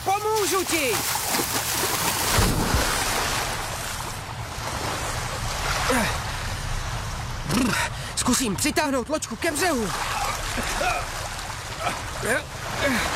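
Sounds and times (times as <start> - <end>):
rushing river current toward a waterfall: 0.0 - 13.1
speech: 0.5 - 2.6, 5.9 - 6.2, 7.6 - 11.2, 12.2 - 13.1.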